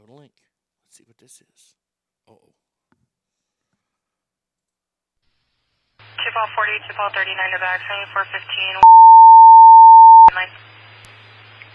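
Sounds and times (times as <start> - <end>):
speech: 0.3 - 2.7, 6.3 - 9.2, 10.3 - 10.7
electronic telephone tone: 8.2 - 10.5.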